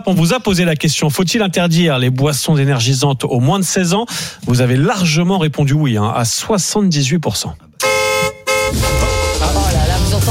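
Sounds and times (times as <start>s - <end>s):
speech: 0.0s - 7.8s
car horn honking as a sound effect: 7.8s - 10.3s
loud noisy burst: 8.5s - 10.3s.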